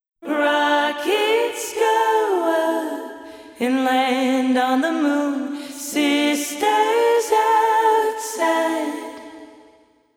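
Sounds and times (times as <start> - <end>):
vintage vocals: 0.2 - 10.1.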